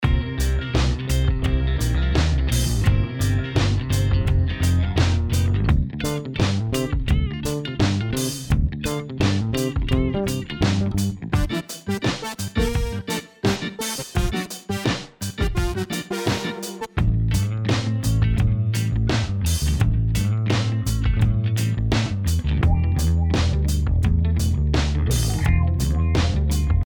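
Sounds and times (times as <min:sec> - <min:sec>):
rock background music: 0:00.0 - 0:26.8.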